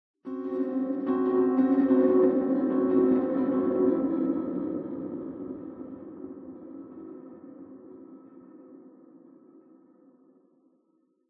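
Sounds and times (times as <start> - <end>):
piano: 0.3 - 8.7.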